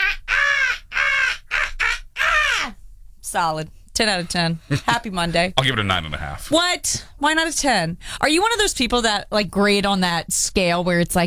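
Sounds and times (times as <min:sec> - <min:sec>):
bird giving harsh caw-like squawks: 0:00.0 - 0:02.8
speech: 0:03.3 - 0:11.2
laughter: 0:04.0 - 0:06.5.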